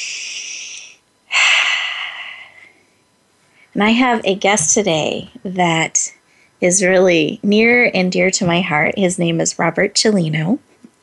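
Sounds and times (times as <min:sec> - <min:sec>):
deep breath during a guided breathing exercise: 0:00.0 - 0:03.8, 0:06.2 - 0:06.6
speech: 0:03.8 - 0:10.7.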